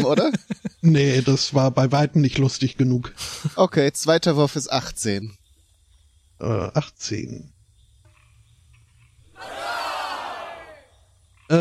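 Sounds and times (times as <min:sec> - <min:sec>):
laughter: 0:00.0 - 0:01.0
speech: 0:00.0 - 0:05.4, 0:06.4 - 0:07.5
crowd cheering and roaring: 0:09.3 - 0:10.9.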